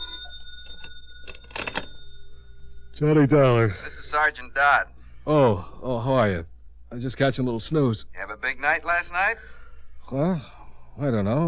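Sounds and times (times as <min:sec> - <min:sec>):
telephone ringing with a bright metallic tone: 0:00.0 - 0:03.6
speech: 0:03.0 - 0:11.4.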